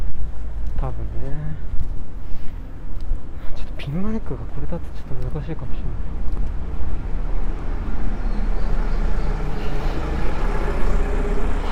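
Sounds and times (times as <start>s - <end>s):
general street noise: 0.0s - 11.7s
speech: 3.9s - 7.1s
rattling diesel engine of a relatively new minibus passing and overtaking: 5.8s - 11.7s.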